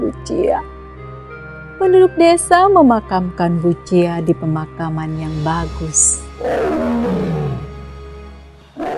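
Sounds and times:
speech: 0.2 - 0.8, 1.8 - 7.4
tiger roaring: 6.4 - 7.8, 8.8 - 8.9.

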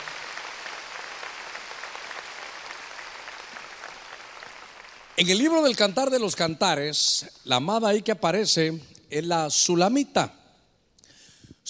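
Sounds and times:
crowd clapping: 0.0 - 5.9
speech: 5.2 - 10.4.

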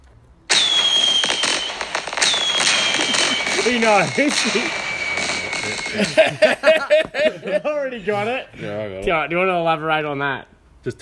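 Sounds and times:
sharp crackling bursts and whistling tones of fireworks: 0.4 - 6.8
laughter: 2.8 - 4.8, 5.6 - 8.5
speech: 3.6 - 4.8, 5.9 - 11.0.

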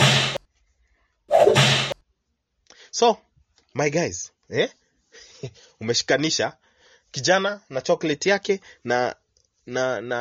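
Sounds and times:
whip cracks: 0.0 - 0.4, 1.3 - 2.0
speech: 3.0 - 10.1.

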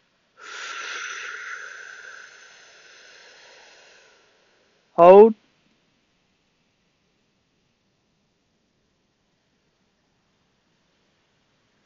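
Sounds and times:
deep breath in during a guided breathing exercise: 0.4 - 4.9
speech: 5.0 - 5.4.

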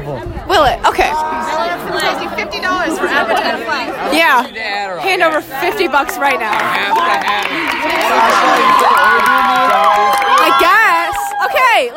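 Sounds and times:
speech: 0.1 - 10.6
crowd of children shrieking and shouting: 7.8 - 11.9.

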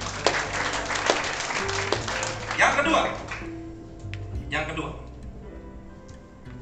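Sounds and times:
audience applause in a reverberant room: 0.0 - 4.1
speech: 2.8 - 3.6, 4.5 - 5.0.

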